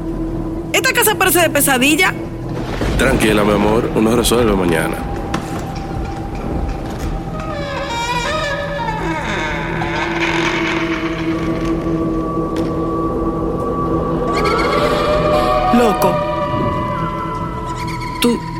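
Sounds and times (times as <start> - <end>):
eerie wavering wailing tones: 0.0 - 18.5
speech: 0.8 - 2.3, 3.0 - 5.1
continuous rushing roar: 2.5 - 18.2.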